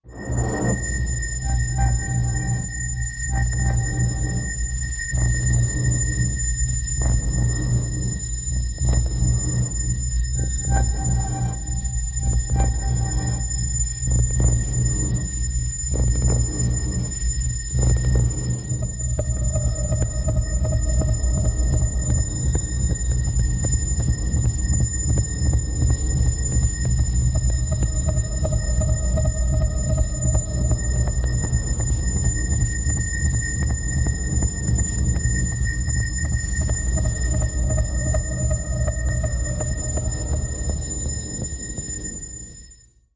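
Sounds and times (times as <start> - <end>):
alert averter machine pulsing steadily: 0.0 - 42.7.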